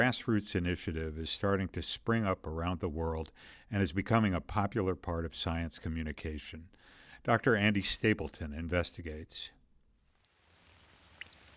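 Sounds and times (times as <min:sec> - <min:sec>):
speech: 0:00.0 - 0:09.6
soft rainfall pattering at night: 0:10.2 - 0:11.5.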